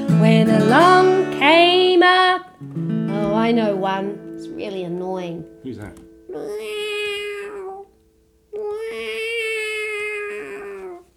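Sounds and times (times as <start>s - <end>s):
speech: 0.2s - 2.8s, 3.4s - 7.0s
cat meowing with long drawn-out wails: 6.3s - 11.1s.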